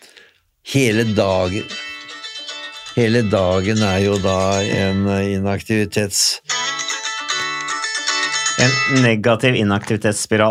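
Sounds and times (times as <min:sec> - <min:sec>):
speech: 0:00.7 - 0:01.8, 0:03.0 - 0:06.5, 0:08.6 - 0:10.5
mobile phone ringtone playing melodic electronic tune: 0:00.9 - 0:05.3, 0:06.4 - 0:09.2.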